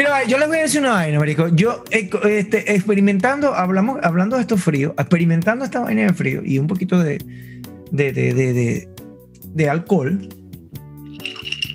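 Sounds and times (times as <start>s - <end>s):
speech: 0.0s - 10.4s
glasses clinking in a toast: 11.0s - 11.7s.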